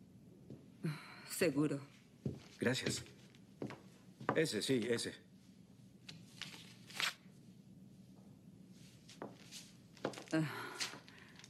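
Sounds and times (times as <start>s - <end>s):
speech: 0.8s - 2.0s, 2.6s - 3.8s, 4.4s - 5.2s, 10.3s - 10.6s
sheet of paper rustling and crinkling as it is handed over: 6.1s - 7.2s.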